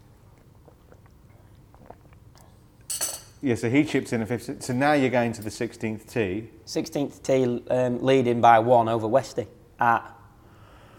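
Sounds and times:
person sipping coffee: 0.0s - 3.0s
speech: 3.4s - 10.2s.

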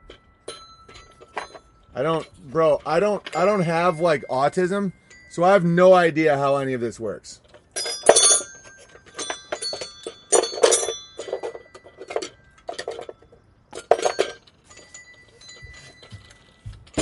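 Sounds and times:
bright metallic bells ringing: 0.0s - 6.9s, 7.6s - 17.0s
speech: 2.0s - 7.4s.

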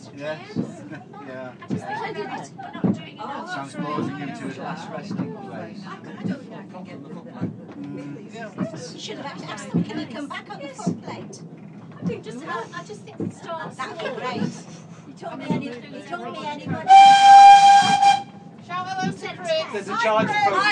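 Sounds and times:
several people chattering: 0.0s - 20.7s
train whistle blast: 16.9s - 18.4s.

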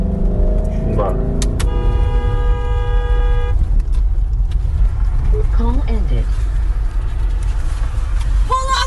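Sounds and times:
truck engine roaring: 0.0s - 8.7s
sustained horn-like tone: 1.7s - 3.6s.

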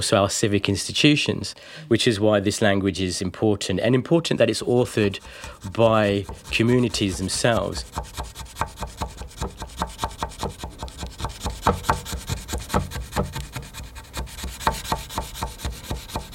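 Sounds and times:
speech: 0.0s - 8.4s
sandpaper removing filler from a wetted Sapele wood sculpture: 4.6s - 16.3s.

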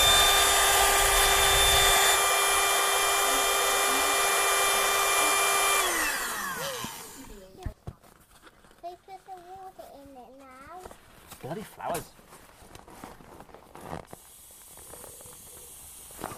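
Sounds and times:
battery-powered electric air pump whirring while inflating a pool: 0.0s - 7.7s, 13.9s - 16.3s.

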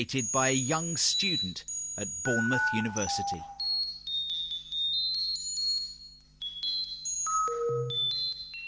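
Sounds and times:
speech: 0.0s - 3.5s
computer sonification of live social media messages as electronic pings and tones: 2.2s - 4.0s, 6.6s - 8.6s.

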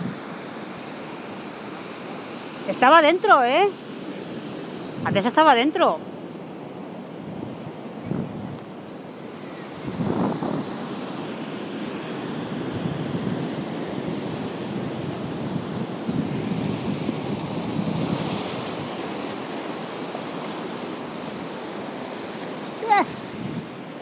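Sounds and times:
sea waves washing in: 0.0s - 23.9s
speech: 2.7s - 3.9s, 5.0s - 6.1s
wind buffeting the microphone: 4.7s - 5.5s, 7.2s - 8.8s, 9.5s - 10.8s, 12.5s - 21.5s, 22.8s - 23.9s.

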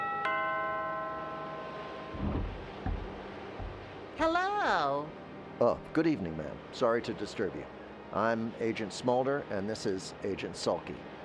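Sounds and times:
electronic doorbell chime: 0.0s - 2.2s
dull low thuds: 2.2s - 4.0s
speech: 4.2s - 11.2s.

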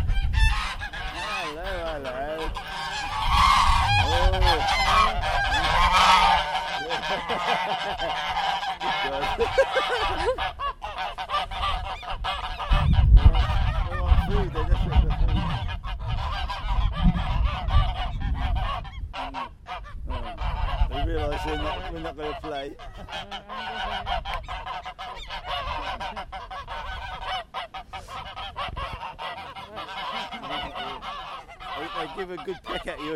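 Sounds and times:
geese honking loudly in a group: 0.0s - 33.1s
laughter: 4.1s - 10.5s, 14.3s - 15.6s, 25.6s - 26.3s
speech: 7.0s - 10.6s, 14.3s - 15.6s, 21.4s - 24.2s, 32.0s - 33.1s.

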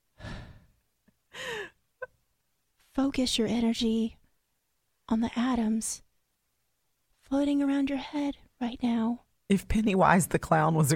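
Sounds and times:
deep breathing in and out: 0.2s - 1.8s
speech: 3.0s - 4.2s, 5.1s - 6.0s, 7.3s - 10.9s.

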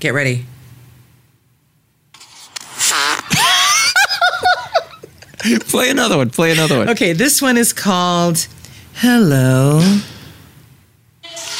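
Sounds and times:
speech: 0.0s - 0.5s, 5.4s - 10.1s
loud squeaky sputtering fart: 2.2s - 4.0s
laughter: 3.3s - 6.9s.

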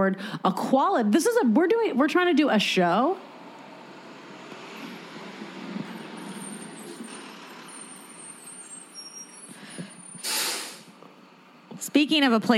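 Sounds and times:
speech: 0.0s - 3.3s, 12.1s - 12.5s
large bottled water delivery truck engine droning outside: 1.4s - 12.5s
delivery truck air brakes hissing: 5.8s - 11.0s.

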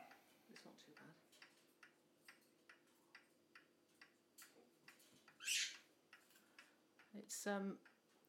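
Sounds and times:
antique mechanical clock ticking: 0.0s - 8.2s
speech: 0.6s - 1.4s, 7.1s - 7.9s
shrill squawking: 5.3s - 5.8s.

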